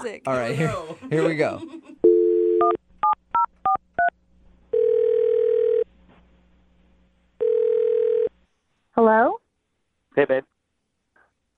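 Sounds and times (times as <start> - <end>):
speech: 0.0 - 1.8, 9.0 - 9.4, 10.2 - 10.5
telephone dial tone: 2.1 - 2.8, 4.8 - 5.8, 7.4 - 8.3.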